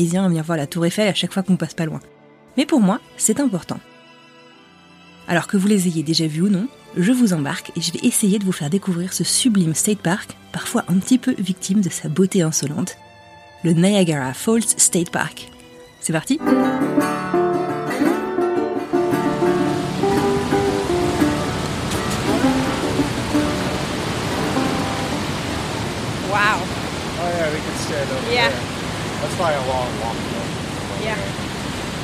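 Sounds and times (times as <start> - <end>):
speech: 0.0 - 4.0, 5.3 - 17.3, 28.0 - 30.4
roar of rushing river water at Niagara Falls State Park: 17.5 - 32.0.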